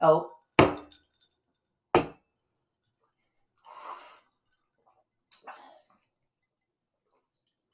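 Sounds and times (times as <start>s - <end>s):
glasses clinking in a toast: 0.7s - 1.7s.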